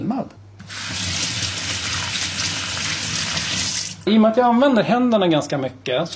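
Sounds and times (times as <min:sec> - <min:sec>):
speech: 0:00.0 - 0:01.0, 0:04.1 - 0:06.1
running tap water splashing as hands are rinsed under the faucet: 0:00.6 - 0:04.0.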